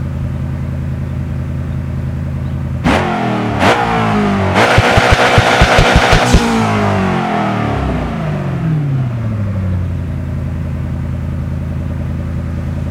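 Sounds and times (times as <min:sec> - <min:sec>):
Koenigsegg Agera sports car engine idling: 0:00.0 - 0:12.8.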